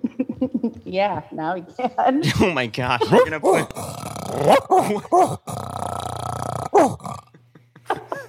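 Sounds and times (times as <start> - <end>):
speech: 0.4 - 5.7
dog growling: 3.2 - 7.4.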